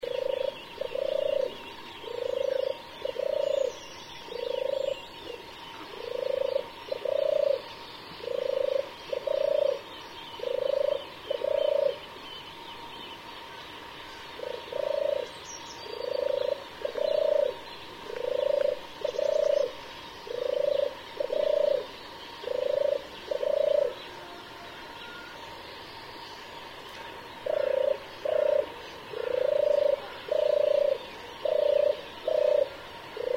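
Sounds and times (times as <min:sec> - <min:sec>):
European turtle dove cooing: 0:00.0 - 0:25.8, 0:26.4 - 0:33.3.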